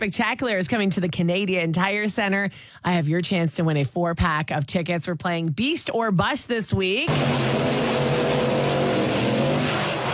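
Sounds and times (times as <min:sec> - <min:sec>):
speech: 0:00.0 - 0:08.8
monster truck engine running: 0:07.1 - 0:10.1.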